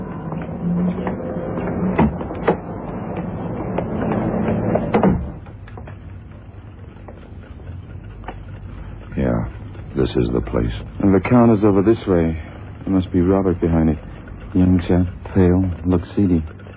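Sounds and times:
watchmaker's shop door opening and swinging shut: 0:00.0 - 0:05.9
sharp clunks and rattles of shop door: 0:00.0 - 0:16.7
steady hum: 0:00.0 - 0:16.7
speech: 0:10.0 - 0:16.6.

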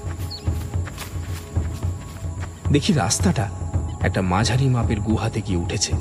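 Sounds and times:
running footsteps of people fleeing along a narrow passage between rocks: 0:00.0 - 0:03.4
speech: 0:02.7 - 0:06.0.

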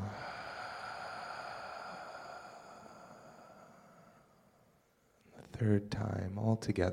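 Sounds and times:
person exhaling deeply during a guided breathing exercise: 0:00.0 - 0:05.4
speech: 0:05.6 - 0:06.9.

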